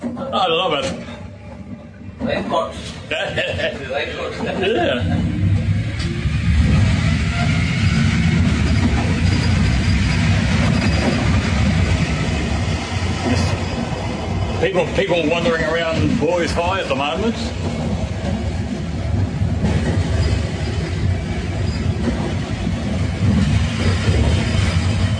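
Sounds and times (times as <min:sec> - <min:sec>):
low engine rumble and road noise inside a moving city bus: 0:00.0 - 0:25.1
speech: 0:00.3 - 0:01.2, 0:02.2 - 0:05.3, 0:14.6 - 0:17.9
laughter: 0:03.1 - 0:05.5.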